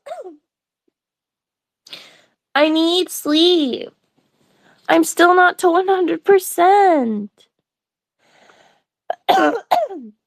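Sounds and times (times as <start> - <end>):
person coughing harsh raspy coughs with wheezy exhale: 0.0 - 0.4, 9.1 - 10.2
speech: 2.6 - 4.0, 4.9 - 7.5, 9.3 - 10.2.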